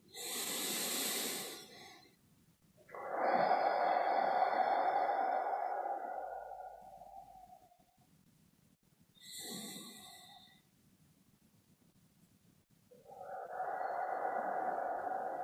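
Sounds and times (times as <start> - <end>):
slow deep breaths in and out to close a session: 0.0 - 2.2, 2.8 - 8.1, 9.2 - 10.7, 12.9 - 15.4.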